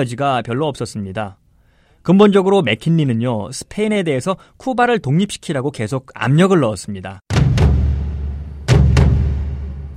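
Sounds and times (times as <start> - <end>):
speech: 0.0 - 1.4, 2.0 - 7.3
heavy explosion of a warship: 7.3 - 9.9.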